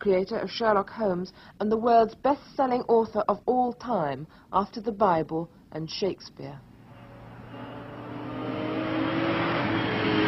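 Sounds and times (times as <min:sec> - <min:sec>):
speech: 0:00.0 - 0:06.7
red sports car engine revving and accelerating: 0:06.8 - 0:10.2.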